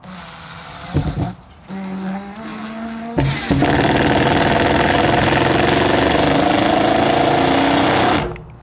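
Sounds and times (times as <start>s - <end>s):
impact driver: 0.0s - 1.4s, 3.2s - 8.5s.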